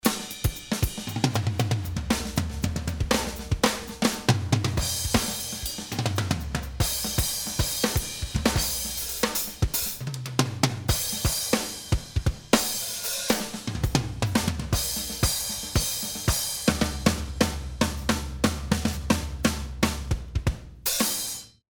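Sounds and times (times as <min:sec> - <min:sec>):
drums: 0:00.0 - 0:21.7.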